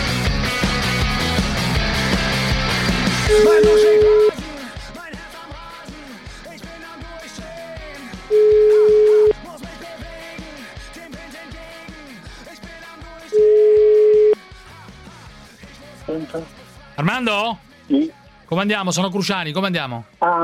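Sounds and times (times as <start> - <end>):
pulsing beat: 0.0 - 13.3
ringback tone of a telephone line while a call is being placed: 3.3 - 4.4, 8.3 - 9.4, 13.4 - 14.4
speech: 17.2 - 20.4.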